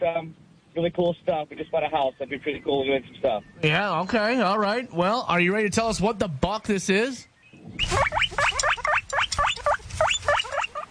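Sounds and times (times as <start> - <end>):
speech: 0.0 - 8.3
guinea pig squeaking: 7.8 - 10.8.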